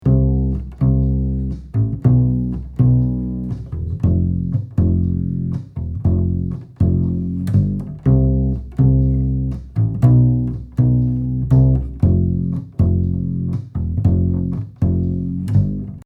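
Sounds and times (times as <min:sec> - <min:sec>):
double bass resolution: 0:00.0 - 0:16.0.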